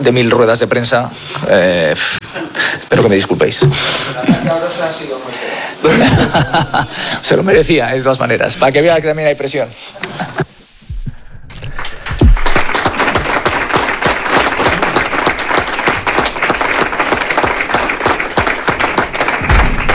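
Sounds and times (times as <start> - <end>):
speech: 0.0 - 10.4
laughter: 4.0 - 4.9, 5.7 - 7.7, 10.0 - 10.6
heavy thumps: 10.8 - 15.4, 18.4 - 19.9
room full of people applauding at a press conference: 11.7 - 19.9.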